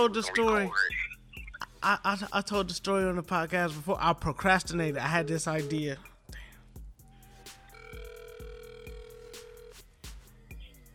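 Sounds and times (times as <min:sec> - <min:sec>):
speech: 0:00.0 - 0:01.0, 0:01.8 - 0:06.1
rhythmic thumping beat: 0:00.0 - 0:10.9
phone ringing with a steady electronic tone: 0:07.7 - 0:09.8.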